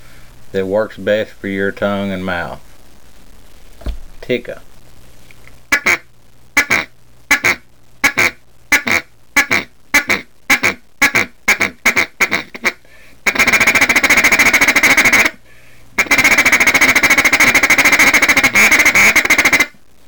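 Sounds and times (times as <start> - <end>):
speech: 0.5 - 2.7, 4.3 - 4.7
duck call blown as a feed call: 5.7 - 6.0, 6.6 - 15.4, 16.0 - 19.8.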